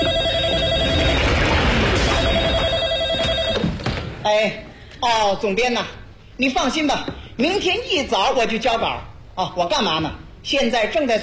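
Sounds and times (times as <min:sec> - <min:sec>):
telephone ringing in electronic bursts: 0:00.0 - 0:03.9
speech: 0:04.3 - 0:11.2.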